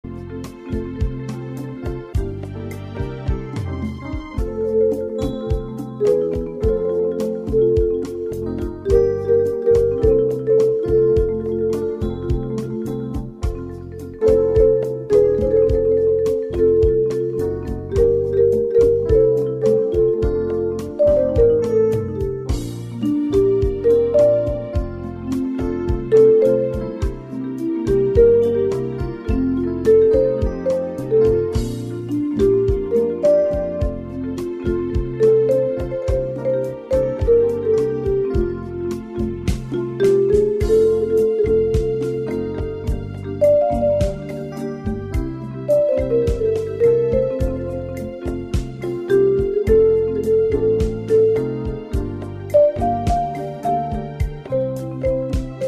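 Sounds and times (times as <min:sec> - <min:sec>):
marimba melody: 0:00.0 - 0:55.6.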